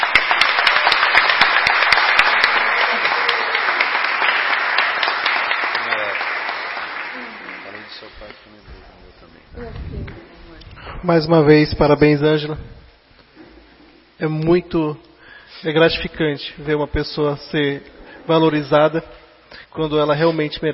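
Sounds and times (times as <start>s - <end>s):
crowd applause at a public ceremony: 0.0s - 8.3s
speech: 11.1s - 12.7s, 14.2s - 20.7s.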